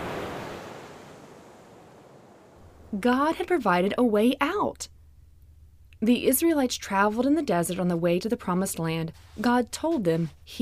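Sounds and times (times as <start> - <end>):
roaring rush of water: 0.0 - 2.6
speech: 2.9 - 5.0, 6.0 - 10.6.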